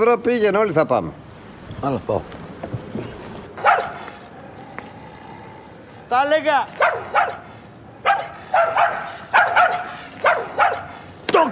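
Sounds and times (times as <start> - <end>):
speech: 0.0 - 2.4, 6.1 - 7.4, 9.5 - 11.5
dog giving short sharp barks and yips: 3.6 - 4.2, 6.8 - 11.1.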